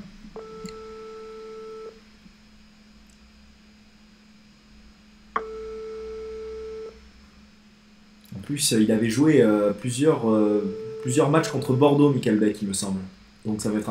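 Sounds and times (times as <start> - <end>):
faint constant hum: 0.0 - 13.8
telephone ringback tone: 0.4 - 1.9, 5.4 - 6.9, 10.5 - 12.1
speech: 8.5 - 13.8.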